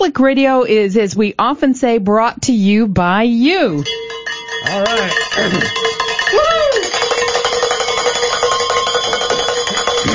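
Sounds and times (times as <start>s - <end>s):
speech: 0.0s - 6.6s
hand bells ringing: 3.8s - 10.1s.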